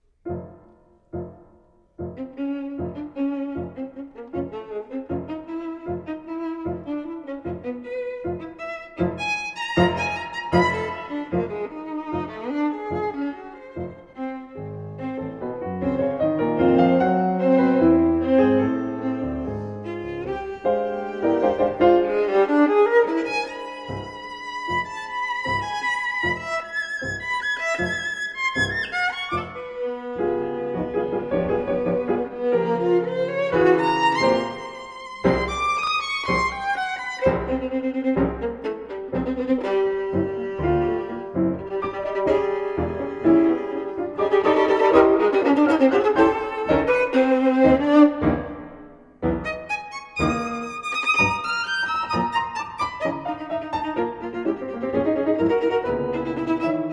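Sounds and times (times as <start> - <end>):
piano in a sonata for violin and piano: 0.0 - 56.9
violin in a sonata for violin and piano: 2.0 - 56.9.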